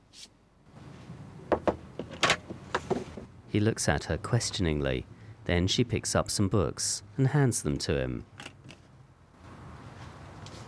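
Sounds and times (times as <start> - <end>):
knocks on a camper van door: 1.5 - 1.8
camper van door opening with rattling clunk and scrape: 1.6 - 3.3
speech: 3.5 - 8.4.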